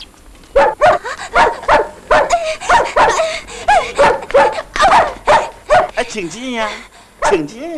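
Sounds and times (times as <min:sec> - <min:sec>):
dog barking in a courtyard: 0:00.6 - 0:06.0, 0:07.2 - 0:07.5
speech: 0:06.1 - 0:07.7.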